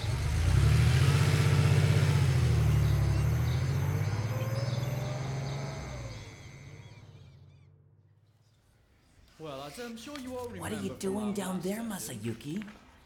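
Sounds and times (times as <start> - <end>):
car engine revving and pulling away: 0.0 - 8.1
speech: 9.4 - 12.8.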